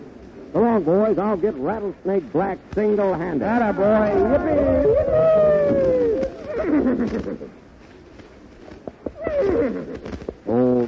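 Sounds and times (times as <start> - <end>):
speech: 0.5 - 7.6
horse whinnying loudly: 3.8 - 7.5, 9.2 - 10.2.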